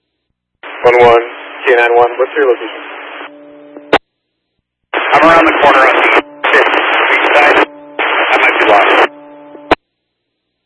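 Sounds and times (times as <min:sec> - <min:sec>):
short loud burst of radio static: 0:00.6 - 0:04.0, 0:05.0 - 0:09.8
speech: 0:00.8 - 0:02.9, 0:05.2 - 0:06.2
low steady electronic hum: 0:03.1 - 0:04.0, 0:05.2 - 0:09.8.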